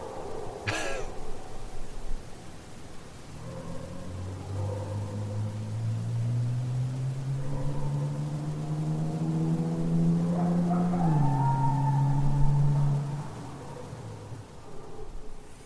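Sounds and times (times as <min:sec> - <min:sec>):
engine humming and revving: 0:04.0 - 0:13.6.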